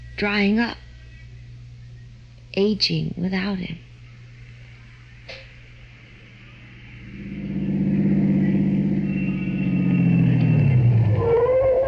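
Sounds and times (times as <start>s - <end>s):
speech: 0.2s - 0.8s, 2.6s - 3.9s
car engine humming and revving as the car drives off: 7.0s - 11.8s.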